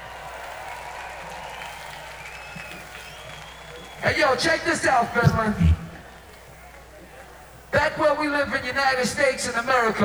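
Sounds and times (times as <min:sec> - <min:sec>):
audience applause at a live show in Finland: 0:00.0 - 0:04.2
speech: 0:04.0 - 0:05.8, 0:08.0 - 0:10.0.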